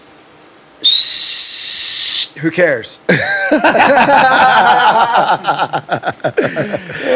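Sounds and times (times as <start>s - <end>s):
voice imitating a whistling firework: 0.8s - 2.4s
speech: 2.4s - 7.1s
laughter: 3.1s - 7.1s.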